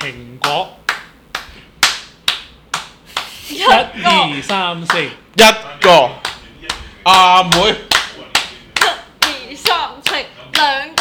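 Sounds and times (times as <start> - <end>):
hands clapping: 0.0 - 3.4, 4.5 - 5.1, 6.2 - 10.9
speech: 0.1 - 0.8, 3.5 - 6.3, 7.1 - 7.9, 9.5 - 10.9.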